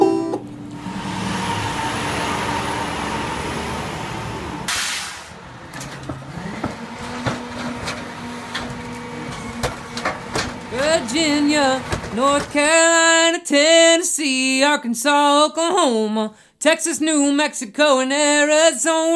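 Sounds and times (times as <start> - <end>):
garbage truck rumbling and whining: 0.0 - 13.1
garbage truck air brakes hissing: 0.9 - 5.6
metallic clanks and knocks of working machinery: 4.7 - 12.9
speech: 11.1 - 19.1.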